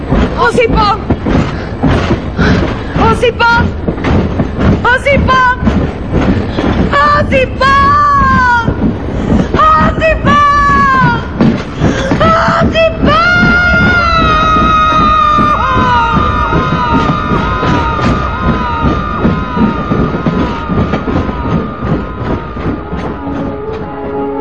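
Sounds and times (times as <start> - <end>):
train running on rails: 0.0 - 24.3
speech: 0.4 - 1.1, 3.1 - 3.8, 4.8 - 7.9
several loud urgent voices calling out: 6.9 - 8.8, 9.5 - 11.4, 12.1 - 23.5.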